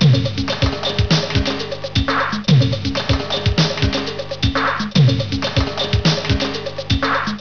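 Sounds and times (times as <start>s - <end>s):
conga drum: 0.0s - 7.3s.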